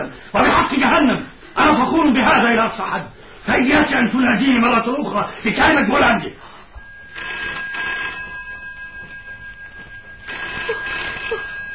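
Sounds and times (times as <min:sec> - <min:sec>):
speech: 0:00.2 - 0:06.5
telephone bell ringing with trilling electric ringing: 0:06.8 - 0:11.7.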